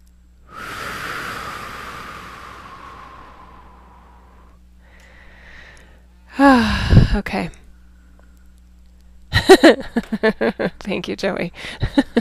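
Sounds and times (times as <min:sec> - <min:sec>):
person taking a long deep breath during a spoken session: 0:00.5 - 0:07.2
speech: 0:06.9 - 0:07.6, 0:09.5 - 0:12.1.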